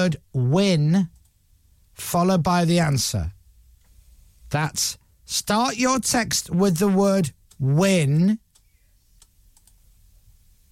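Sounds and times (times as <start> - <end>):
speech: 0.0 - 1.1, 2.0 - 3.4, 4.5 - 8.4
computer mouse clicks: 8.5 - 9.8.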